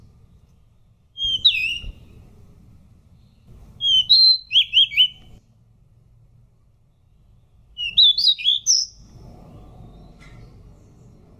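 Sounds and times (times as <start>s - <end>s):
pied bush chat song with sweet whistled notes: 0.0s - 2.2s, 3.1s - 5.4s, 6.9s - 11.3s.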